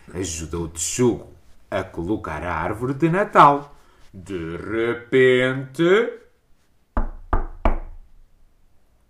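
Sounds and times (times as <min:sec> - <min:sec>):
speech: 0:00.1 - 0:06.2
firm knocks on a wooden door: 0:07.0 - 0:08.0.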